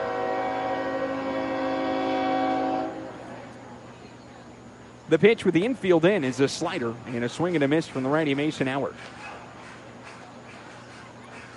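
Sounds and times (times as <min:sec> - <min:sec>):
train horn blaring a chord of sustained tones: 0:00.0 - 0:03.3
low rumbling train noise: 0:00.0 - 0:11.5
speech: 0:05.1 - 0:09.2.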